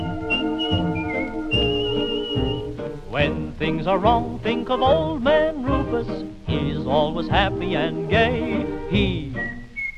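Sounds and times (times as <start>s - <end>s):
person whistling a tune: 0.0s - 2.7s, 9.2s - 9.9s
instrumental backing with soft rhythmic accents: 0.0s - 9.9s
speech: 3.2s - 9.3s.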